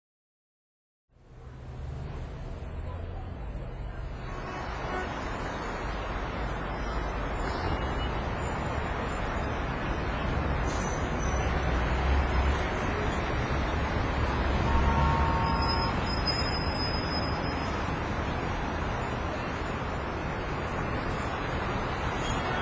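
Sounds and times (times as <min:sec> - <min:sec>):
traffic: 0:01.1 - 0:22.5.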